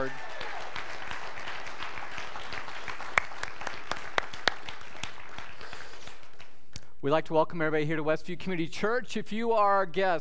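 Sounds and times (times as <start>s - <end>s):
church audience applauding: 0.0s - 6.6s
speech: 7.0s - 10.1s.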